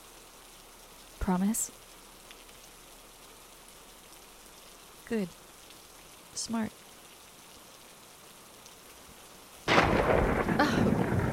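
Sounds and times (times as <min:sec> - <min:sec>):
steady hissing rainfall: 0:00.0 - 0:11.3
speech: 0:01.3 - 0:01.8, 0:05.1 - 0:05.4, 0:06.4 - 0:06.8
thunder rumbling in a heavy storm: 0:09.7 - 0:11.3.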